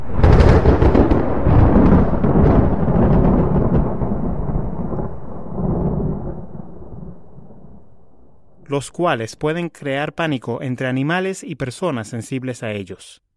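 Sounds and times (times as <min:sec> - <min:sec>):
powerful thunder rumble with sharp crack: 0:00.0 - 0:09.7
speech: 0:08.7 - 0:13.3.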